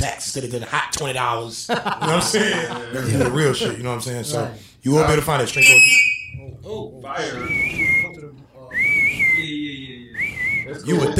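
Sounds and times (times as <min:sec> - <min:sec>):
speech: 0:00.0 - 0:08.0, 0:10.7 - 0:11.1
laughter: 0:01.7 - 0:03.8
person whistling: 0:05.6 - 0:06.4, 0:08.8 - 0:10.7.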